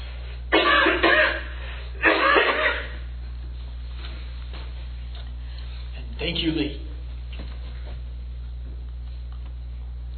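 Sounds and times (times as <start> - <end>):
person clearing throat: 0.5 - 3.1
person coughing: 0.5 - 3.1
speech: 6.3 - 6.9.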